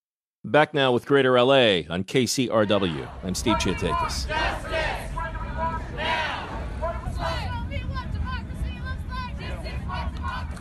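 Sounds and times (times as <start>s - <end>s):
speech: 0.4s - 4.8s
protest crowd shouting and chanting in the streets of Los Angeles: 2.7s - 10.5s
steady low rumble of street noise: 2.9s - 10.5s.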